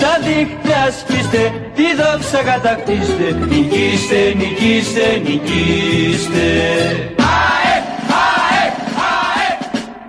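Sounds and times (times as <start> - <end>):
speech: 0.2 - 7.5
crowd chanting a football team anthem in unison: 4.2 - 10.0.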